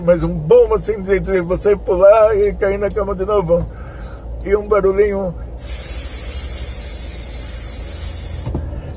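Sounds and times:
speech: 0:00.0 - 0:03.8, 0:04.4 - 0:06.0
voice imitating hiss of escaping air from a tyre inflation hose: 0:05.6 - 0:08.5.

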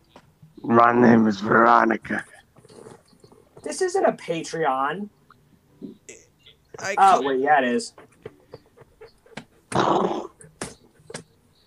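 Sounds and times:
speech: 0:00.6 - 0:02.3, 0:03.6 - 0:05.2, 0:06.8 - 0:08.1
brief vocal bursts: 0:06.1 - 0:07.2
person imitating a horse snort: 0:09.7 - 0:10.4.

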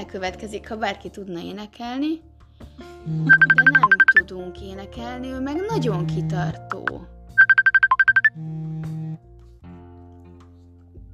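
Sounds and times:
speech: 0:00.0 - 0:07.2, 0:08.4 - 0:09.3
phone ringtone signalling an incoming call: 0:03.3 - 0:04.2, 0:06.7 - 0:08.3.

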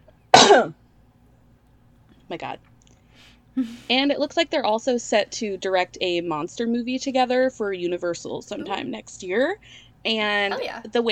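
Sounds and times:
loud cough: 0:00.3 - 0:00.8
speech: 0:00.5 - 0:00.8, 0:02.3 - 0:02.7, 0:03.6 - 0:11.0.

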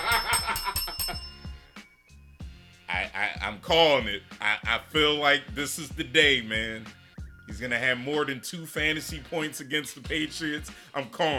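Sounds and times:
bright bell ringing: 0:00.0 - 0:02.3
speech: 0:03.4 - 0:07.0, 0:07.6 - 0:11.3.

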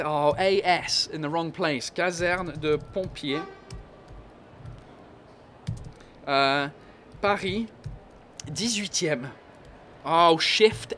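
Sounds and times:
speech: 0:00.0 - 0:03.6, 0:06.3 - 0:07.8, 0:08.4 - 0:09.4, 0:10.0 - 0:10.9
steady noise: 0:00.0 - 0:10.9
typing on a computer keyboard: 0:02.2 - 0:04.9, 0:05.6 - 0:06.1, 0:07.1 - 0:08.8.

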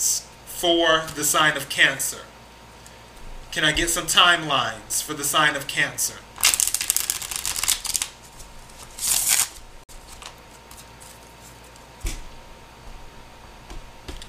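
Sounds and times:
speech: 0:00.0 - 0:02.3, 0:03.6 - 0:06.3
tarot cards being shuffled for a reading: 0:06.4 - 0:11.9.

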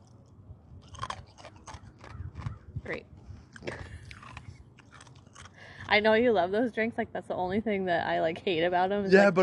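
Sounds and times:
person chewing ice cubes: 0:00.0 - 0:02.7, 0:03.5 - 0:05.9
speech: 0:02.9 - 0:03.8, 0:05.9 - 0:09.4.

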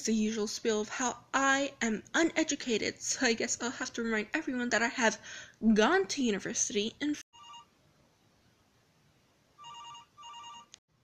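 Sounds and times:
speech: 0:00.0 - 0:07.2
telephone ringing with electronic trilling for an incoming call: 0:07.3 - 0:07.7, 0:09.6 - 0:10.8.

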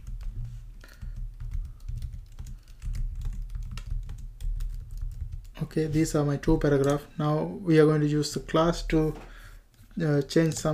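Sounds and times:
typing on a computer keyboard: 0:00.0 - 0:05.6, 0:10.2 - 0:10.7
speech: 0:05.6 - 0:09.3, 0:10.0 - 0:10.7.

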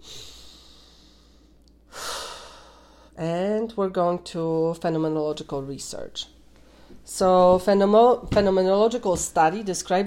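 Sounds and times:
deep breath: 0:00.0 - 0:03.2
speech: 0:03.2 - 0:06.4, 0:07.1 - 0:10.0.

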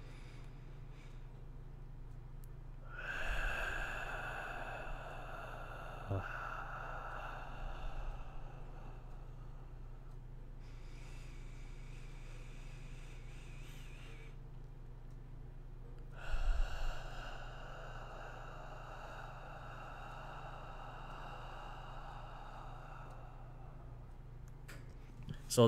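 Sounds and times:
slow deep breathing in and out: 0:00.0 - 0:25.6.

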